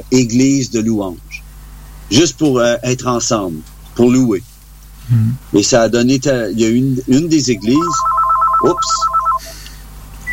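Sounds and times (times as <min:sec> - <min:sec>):
speech: 0:00.0 - 0:01.4, 0:02.1 - 0:04.5, 0:05.1 - 0:09.6
telephone ringing with an electronic trill: 0:07.5 - 0:09.5.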